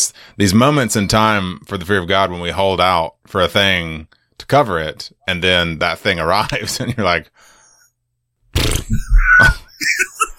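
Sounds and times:
speech: 0.0s - 7.5s, 8.9s - 10.1s
voice imitating a wet fart with the mouth: 8.5s - 9.6s.

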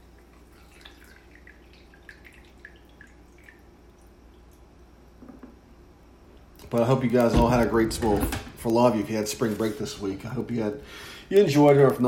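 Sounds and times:
coffee being poured into a cup: 0.0s - 4.7s
low steady hum: 0.0s - 12.0s
speech: 6.7s - 12.0s.

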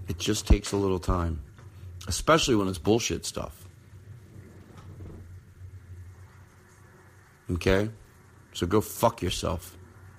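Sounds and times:
speech: 0.1s - 3.6s, 7.5s - 8.0s, 8.6s - 9.8s
thunder rumbling outside: 3.7s - 7.4s.

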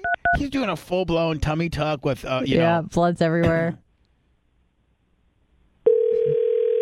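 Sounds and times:
speech: 0.4s - 3.8s
phone line tone: 5.9s - 6.7s.

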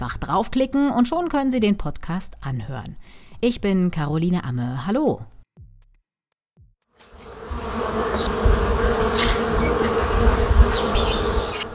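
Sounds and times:
speech: 0.1s - 5.4s
many honeybees swarming around their hive in late summer: 7.0s - 11.7s.

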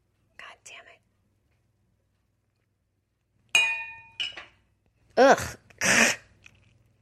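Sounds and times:
wine glass clinking: 3.6s - 4.6s
speech: 5.2s - 6.0s.

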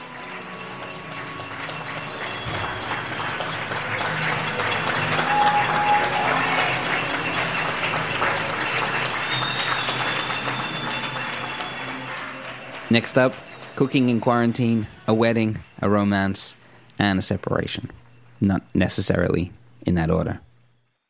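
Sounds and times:
crowd clapping: 0.0s - 16.6s
faint whistles from a crowd: 5.2s - 7.0s, 8.8s - 12.2s
speech: 12.9s - 20.5s.

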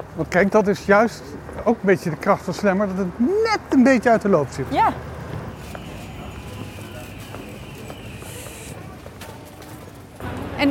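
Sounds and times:
street noise: 0.0s - 10.6s
speech: 0.2s - 5.1s
footsteps of people walking outdoors along a street: 4.7s - 10.6s
murmuring voices: 4.7s - 10.6s.

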